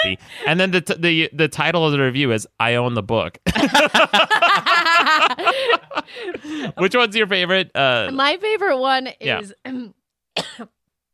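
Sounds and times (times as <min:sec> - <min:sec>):
laughter: 0:00.0 - 0:00.5, 0:03.5 - 0:06.9
speech: 0:00.0 - 0:10.8
sharp raspy cough: 0:10.4 - 0:10.8.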